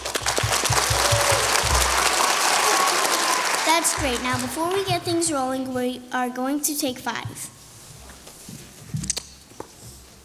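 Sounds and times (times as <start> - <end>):
crowd clapping: 0.0 - 5.3
speech: 3.8 - 7.6.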